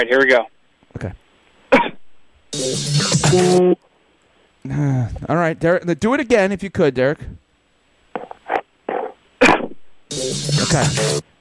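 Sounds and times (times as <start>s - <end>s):
speech: 0.0s - 1.8s, 2.5s - 3.9s, 4.6s - 7.4s, 10.3s - 11.3s
caller imitating a cough: 1.7s - 2.0s.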